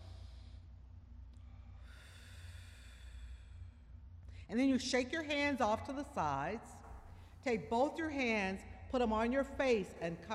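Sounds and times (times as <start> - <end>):
deep breath drawn in through the nose and let out through the mouth: 0.0 - 4.5
speech: 4.5 - 6.8, 7.4 - 10.3.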